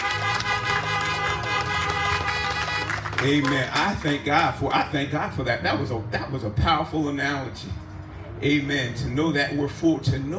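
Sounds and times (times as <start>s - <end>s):
several car horns honking together: 0.0s - 4.4s
speech: 3.2s - 7.8s, 8.4s - 10.3s.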